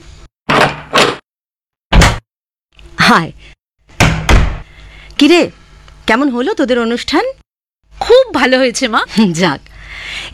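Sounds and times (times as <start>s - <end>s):
door being opened at home: 0.5s - 1.2s
heavy thud: 1.9s - 2.2s, 4.0s - 4.7s
speech: 3.1s - 3.5s, 5.2s - 7.4s, 8.0s - 10.3s.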